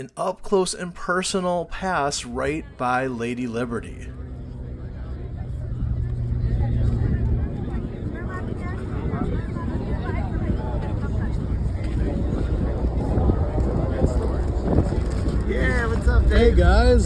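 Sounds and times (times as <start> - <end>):
speech: 0.0 - 4.2, 16.1 - 17.0
harbor cruise boat engine rumble: 2.3 - 17.0
people talking faintly: 2.5 - 16.3
broadband wind roar on an open boat deck: 3.7 - 17.0.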